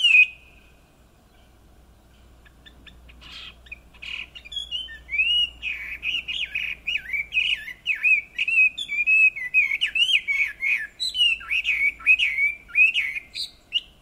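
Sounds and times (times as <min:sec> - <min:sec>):
Chinese hwamei Garrulax canorus whistling and warbling: 0:00.0 - 0:00.7, 0:02.1 - 0:14.0.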